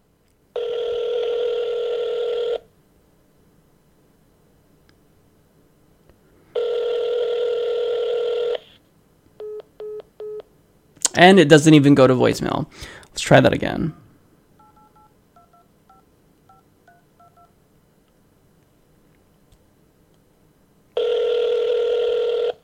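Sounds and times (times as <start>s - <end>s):
telephone ringing on an outgoing call to a consumer help line: 0.6s - 2.6s, 6.6s - 8.7s, 14.6s - 17.5s, 21.0s - 22.6s
speech: 11.2s - 14.0s.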